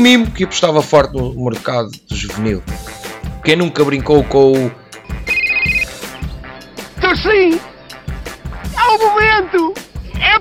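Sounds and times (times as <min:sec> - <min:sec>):
speech: 0:00.0 - 0:04.8, 0:07.2 - 0:07.7, 0:09.0 - 0:10.3
mobile phone ringtone from an advert with bright electronic melody: 0:05.1 - 0:06.1.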